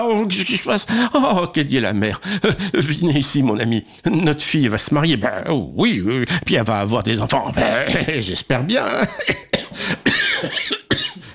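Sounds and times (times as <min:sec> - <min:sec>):
speech: 0:00.0 - 0:10.7
person coughing harshly from the cold in a cellar: 0:09.0 - 0:11.3.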